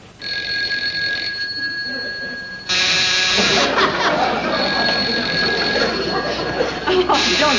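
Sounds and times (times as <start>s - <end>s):
telephone ringing with a steady electric tone: 0.2s - 7.5s
laughter: 3.3s - 7.5s.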